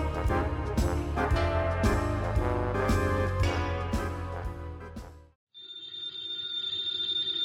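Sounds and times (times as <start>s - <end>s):
loud busy orchestral music in a mystery radio drama: 0.0s - 5.3s
old-fashioned telephone bell ringing: 5.5s - 7.4s.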